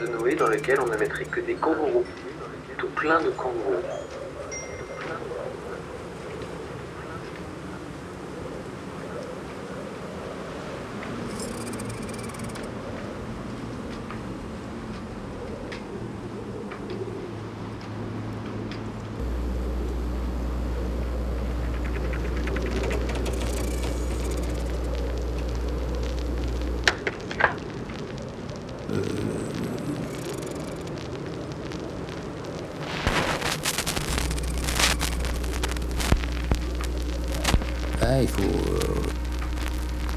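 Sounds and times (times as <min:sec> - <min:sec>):
speech: 0:00.0 - 0:04.2
wind at sea aboard a lightship: 0:00.0 - 0:40.1
lightship engine drone with low mechanical rumble: 0:19.1 - 0:27.6, 0:28.8 - 0:31.8, 0:33.0 - 0:40.1.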